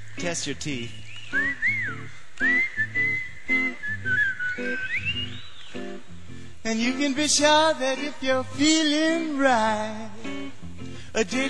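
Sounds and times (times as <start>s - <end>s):
speech: 0.2s - 3.0s, 6.7s - 10.1s, 11.2s - 11.4s
person whistling a bright wandering melody: 1.3s - 5.5s
bouncy instrumental backing with steady rhythmic chords: 1.4s - 11.4s.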